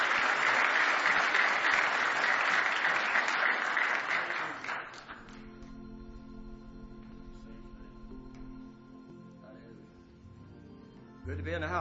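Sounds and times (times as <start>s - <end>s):
audience applause at a church gospel service: 0.0s - 5.4s
speech: 11.3s - 11.7s.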